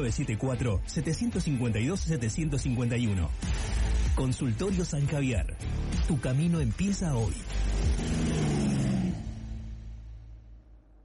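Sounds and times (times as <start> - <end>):
speech: 0.0 - 8.2
tractor carrying a load revving: 7.4 - 9.8.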